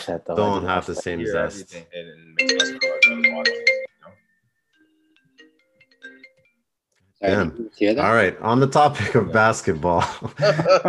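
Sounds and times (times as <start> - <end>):
speech: 0.0 - 4.2, 7.2 - 10.8
phone ringtone melody of stacked electronic tones: 2.4 - 6.7
laughter: 10.0 - 10.8.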